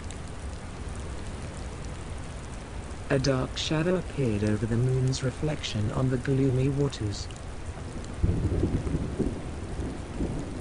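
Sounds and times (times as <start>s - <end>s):
heavy cold rain pouring on a dark stormy night at sea: 0.0s - 10.5s
speech: 3.1s - 7.4s.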